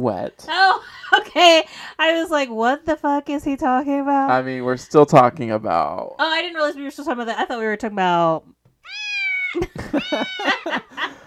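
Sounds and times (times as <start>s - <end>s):
speech: 0.0s - 11.2s
cat meowing: 8.8s - 10.8s
laughter: 9.6s - 11.2s.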